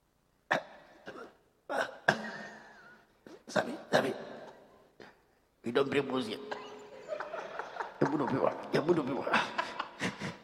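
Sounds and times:
person coughing: 0.5 - 3.4
speech: 3.5 - 4.0, 5.7 - 6.6, 8.1 - 9.6
laughter: 6.5 - 10.4.

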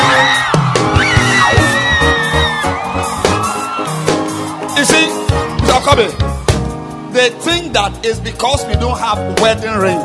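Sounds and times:
people shouting and whooping excitedly: 0.0 - 6.5
speech: 5.9 - 6.3, 7.2 - 10.0.

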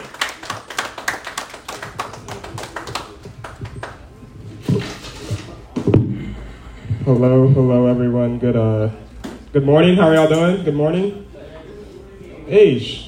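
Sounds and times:
small crowd clapping: 0.0 - 4.2
speech: 7.1 - 11.3, 12.5 - 13.0.

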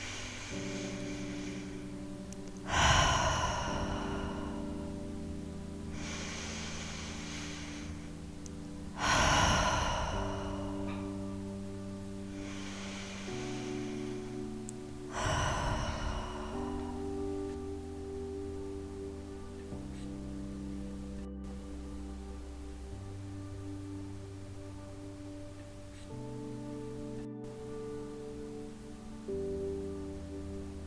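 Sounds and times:
deep cleansing breaths at the close of a meditation: 0.0 - 30.8
soft sustained musical drone: 0.0 - 30.8.

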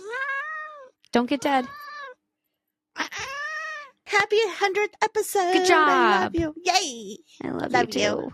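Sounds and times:
cat meowing: 0.0 - 2.2
speech: 1.2 - 1.8, 4.1 - 8.3.

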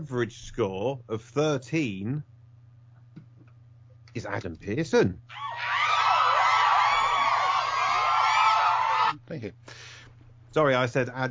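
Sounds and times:
speech: 0.0 - 2.3, 4.2 - 5.8, 9.3 - 9.9, 10.5 - 11.2
crowd of girls screaming and cheering: 5.3 - 9.2.

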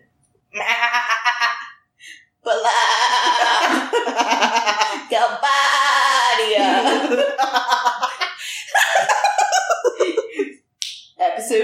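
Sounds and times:
person imitating a goat bleating: 0.6 - 1.1, 2.4 - 3.9, 5.0 - 6.8
laughter: 0.6 - 1.8, 3.1 - 5.2, 6.3 - 10.6
speech: 6.7 - 8.2.

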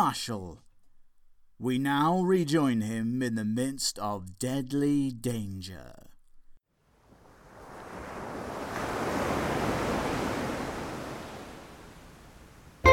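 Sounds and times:
speech: 0.0 - 0.6, 1.6 - 6.1
sea wave washing on a beach of soft white coral sand: 7.0 - 12.8.

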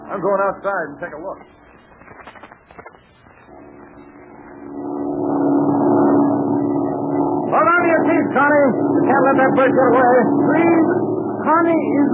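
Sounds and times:
speech: 0.1 - 1.6, 7.5 - 12.1
loud steady airplane engine droning overhead: 3.5 - 12.1.

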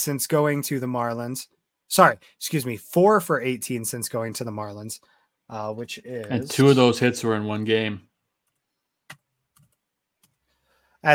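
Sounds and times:
speech: 0.0 - 8.1
computer keyboard clicks: 8.4 - 10.4.

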